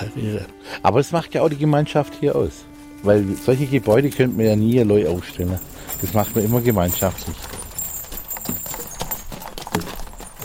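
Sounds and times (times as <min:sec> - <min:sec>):
speech: 0:00.2 - 0:07.6
hooves of a horse pulling a tourist carriage clip-clopping: 0:02.3 - 0:10.4.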